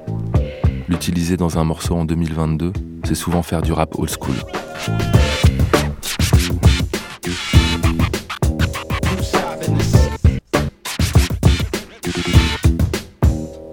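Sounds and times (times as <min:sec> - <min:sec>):
loud dense music backing: 0:00.0 - 0:13.7
speech: 0:01.0 - 0:05.2
DJ scratching a vinyl record on a turntable: 0:03.2 - 0:13.5.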